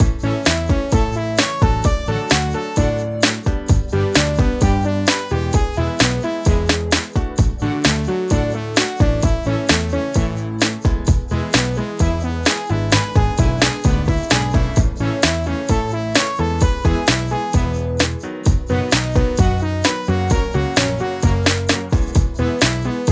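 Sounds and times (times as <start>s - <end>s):
loop machine instrumental: 0.0s - 23.1s.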